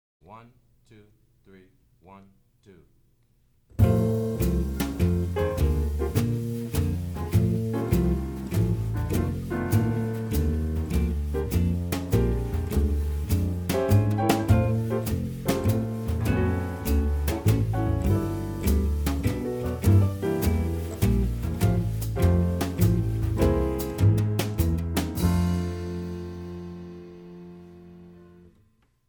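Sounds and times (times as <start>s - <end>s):
bass: 0.2s - 29.0s
blues guitar: 3.8s - 26.6s
drums: 3.8s - 27.6s
piano: 3.8s - 29.0s.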